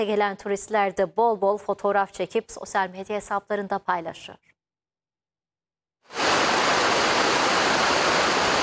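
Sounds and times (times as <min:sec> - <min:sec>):
speech: 0:00.0 - 0:04.5
powerful waterfall roaring: 0:06.1 - 0:08.6.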